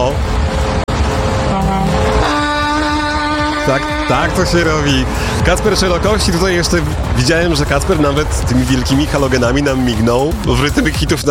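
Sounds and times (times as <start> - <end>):
steady loud truck engine rumble: 0.0 - 11.2
big semi-truck air horn: 0.4 - 6.0
speech: 3.7 - 11.2.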